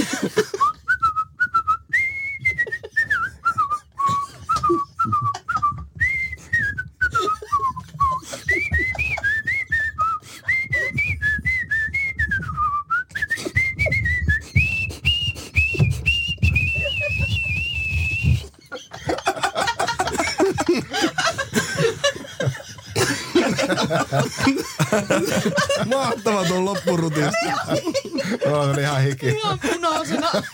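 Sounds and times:
laughter: 0.0 - 0.8, 2.4 - 11.0, 16.4 - 30.5
person whistling a lively tune: 0.3 - 18.6
speech: 25.0 - 30.5.

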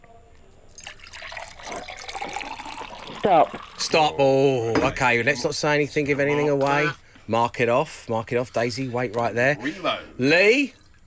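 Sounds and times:
juice being poured into a container: 0.7 - 4.4, 10.4 - 11.0
speech: 3.2 - 10.8.

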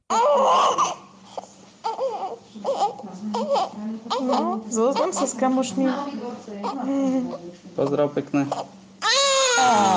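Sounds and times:
newborn baby crying: 0.1 - 5.6, 6.6 - 7.4, 8.4 - 9.9
speech: 3.1 - 8.8, 9.6 - 9.9.

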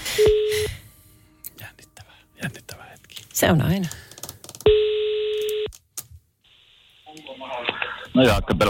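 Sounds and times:
steady telephone line tone: 0.2 - 0.8, 4.7 - 5.7
speech: 3.4 - 4.0, 8.2 - 8.6.

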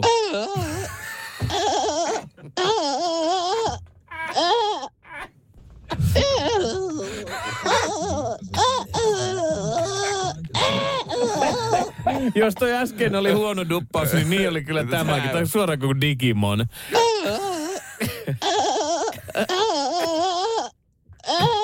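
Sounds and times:
dubbed cartoon panda children crying and wailing: 0.0 - 5.3, 5.9 - 12.4, 17.0 - 21.6
laughter: 6.0 - 15.4
speech: 12.4 - 17.0, 19.4 - 19.7.

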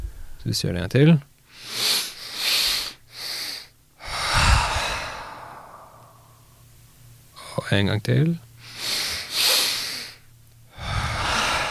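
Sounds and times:
speech: 0.4 - 1.8, 7.7 - 8.5
long loose exhale during a breathing exercise: 1.5 - 6.4, 8.6 - 11.6
short breaths drawn in during a breathing exercise: 1.5 - 6.4, 8.6 - 11.6.

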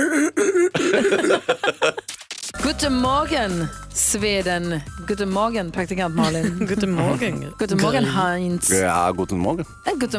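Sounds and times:
man's voice mimicking crying: 0.0 - 1.5
laughter: 0.7 - 2.1, 6.2 - 8.2
speech: 2.8 - 10.1.

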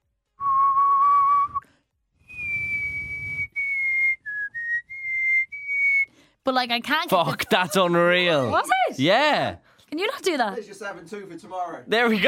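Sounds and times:
person whistling: 0.4 - 6.2
speech: 6.5 - 12.2.

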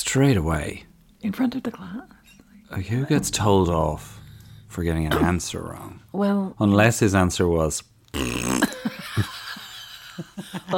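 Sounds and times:
speech: 0.0 - 9.3
loud drawn-out burp: 5.1 - 5.3, 8.1 - 9.0.

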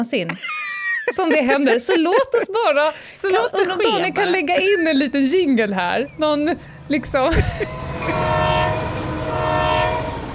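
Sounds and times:
speech: 0.0 - 8.2
laughter: 0.3 - 5.6, 7.2 - 8.4
Swedish X2000 high-speed train passing: 3.4 - 10.3.

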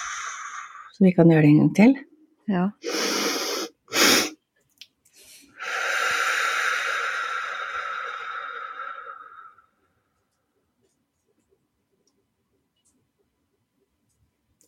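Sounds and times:
two quick inhales in a calming breathing exercise: 0.0 - 0.9, 5.1 - 9.7
long steady exhale in a calming breathing exercise: 0.0 - 1.0, 2.8 - 4.3, 5.2 - 9.8
speech: 1.0 - 2.9.

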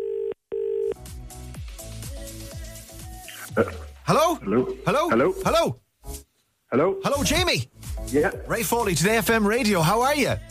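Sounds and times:
telephone ring tone heard down the line: 0.0 - 1.0
rhythmic music bed: 1.0 - 6.3, 7.0 - 10.5
speech: 3.6 - 5.8, 6.7 - 10.5.

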